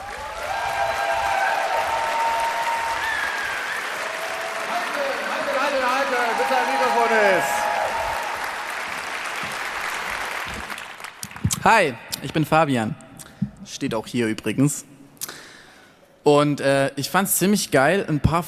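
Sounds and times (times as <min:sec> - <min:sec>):
people cheering and whooping: 0:00.0 - 0:09.6
large audience applause: 0:00.0 - 0:11.6
speech: 0:11.7 - 0:13.0, 0:13.7 - 0:14.9, 0:16.2 - 0:18.4.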